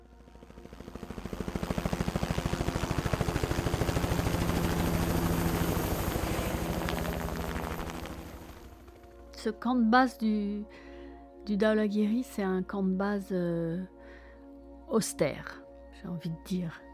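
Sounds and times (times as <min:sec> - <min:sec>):
helicopter rotor blades chopping: 0:00.0 - 0:09.6
speech: 0:09.4 - 0:10.9, 0:11.5 - 0:13.9, 0:14.9 - 0:16.8.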